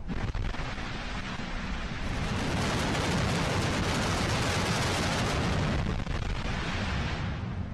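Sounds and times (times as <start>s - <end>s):
rocket engines roaring during static test firing: 0.0s - 7.7s.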